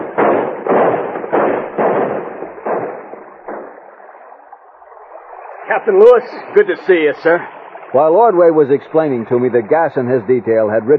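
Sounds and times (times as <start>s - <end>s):
guns fired in a celebratory volley from the shore: 0.0s - 4.4s
speech: 5.7s - 10.9s.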